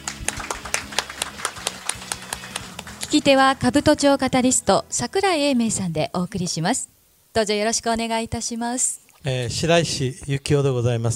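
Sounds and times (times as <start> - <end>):
audience clapping to welcome a guest: 0.0 - 3.8
speech: 3.1 - 11.1.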